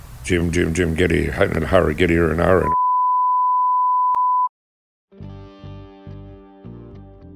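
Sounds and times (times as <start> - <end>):
speech: 0.2 - 2.8
censor bleep: 2.6 - 4.5.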